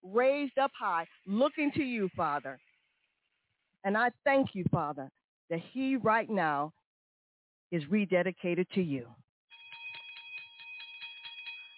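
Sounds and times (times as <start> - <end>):
speech: 0.1 - 2.7, 3.8 - 6.8, 7.7 - 9.2
bell ringing: 9.5 - 11.7.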